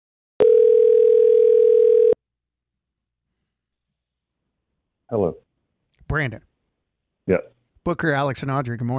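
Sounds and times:
telephone dial tone while placing a call: 0.4s - 2.2s
speech: 5.1s - 5.4s, 6.1s - 6.5s, 7.3s - 8.9s.

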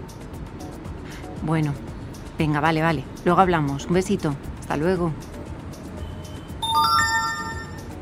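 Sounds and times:
speech: 1.4s - 5.3s
phone notification chime for a new social media like: 6.6s - 7.9s.

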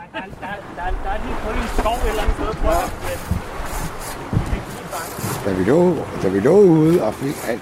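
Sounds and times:
speech: 0.1s - 3.4s, 5.4s - 7.6s
blustery wind roaring across open water aboard a sailboat: 0.6s - 6.2s.

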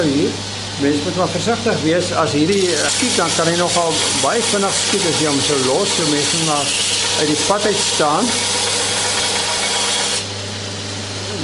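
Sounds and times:
speech: 0.0s - 8.7s
sanding machine motor hum: 0.0s - 11.4s
wood being sanded flat on a sanding machine: 2.7s - 10.3s.

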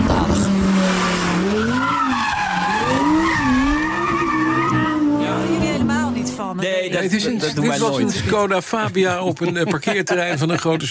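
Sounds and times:
tires squealing: 0.0s - 6.6s
Audi R8 V10 sports car engine revving: 0.0s - 7.2s
laughter: 7.0s - 10.8s
speech: 7.1s - 10.8s.

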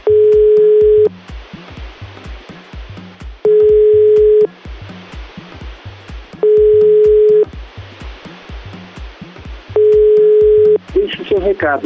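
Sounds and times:
telephone ringback tone while a call is placed: 0.0s - 1.1s, 3.4s - 4.5s, 6.4s - 7.5s, 9.8s - 10.8s
low rhythmic rumble: 0.0s - 11.8s
hissy telephone line noise: 0.6s - 3.6s, 4.2s - 11.8s
speech: 11.6s - 11.8s.

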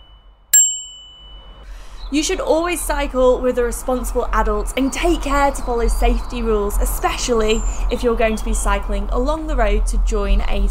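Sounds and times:
bicycle bell ding during a safety check on a cycle path: 0.0s - 1.7s
speech: 2.1s - 10.6s.

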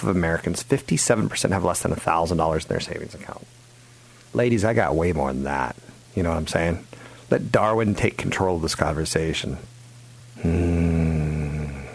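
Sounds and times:
speech: 0.0s - 3.6s, 4.4s - 9.7s, 10.4s - 10.8s
man growling deeply: 10.4s - 11.9s.

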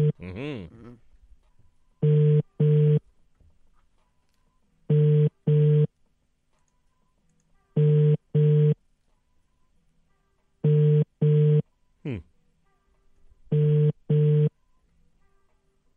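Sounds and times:
person speaking: 0.0s - 1.1s, 12.0s - 12.3s
double-burst telephone ringback tone: 2.0s - 3.0s, 4.9s - 5.9s, 7.8s - 8.8s, 10.7s - 11.6s, 13.5s - 14.5s.

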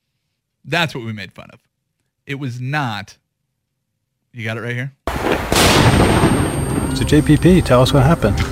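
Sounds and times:
speech: 0.6s - 1.7s, 2.3s - 3.2s, 4.4s - 6.3s, 6.9s - 8.5s
firework crackle: 5.1s - 7.4s.

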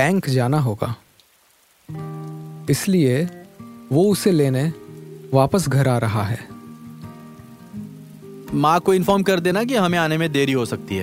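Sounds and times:
speech: 0.0s - 1.0s, 1.9s - 2.1s, 2.7s - 6.5s, 8.5s - 11.0s
heavy rain pouring down: 0.0s - 11.0s.

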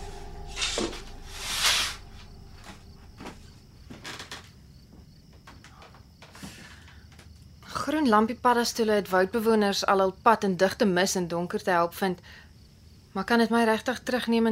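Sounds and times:
curtain being drawn: 0.0s - 3.4s
window blind closing: 0.0s - 3.4s
speech: 7.9s - 12.4s, 13.2s - 14.4s.

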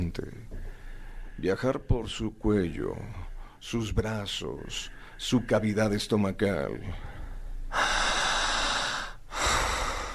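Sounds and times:
speech: 0.1s - 0.5s, 1.4s - 7.8s
slow deep breathing during guided relaxation: 0.5s - 1.6s, 3.1s - 3.6s, 4.7s - 5.7s, 6.8s - 10.1s.

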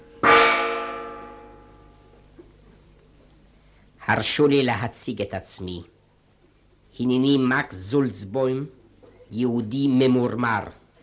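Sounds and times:
gong strike ringing: 0.0s - 2.2s
speech: 4.1s - 5.9s, 7.0s - 10.8s.

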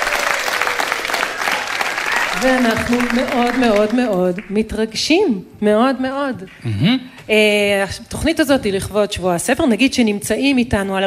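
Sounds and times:
audience of children parents and families applauding in a hall: 0.0s - 4.5s
speech: 2.4s - 11.0s.

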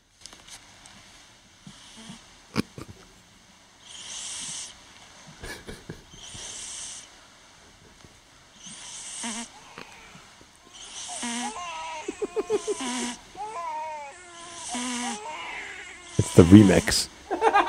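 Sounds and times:
cat snoring: 1.7s - 2.9s, 3.8s - 7.2s, 8.6s - 13.2s, 14.2s - 16.8s
laughter: 5.4s - 6.5s, 12.0s - 13.2s, 16.2s - 17.6s
speech: 16.3s - 17.2s.

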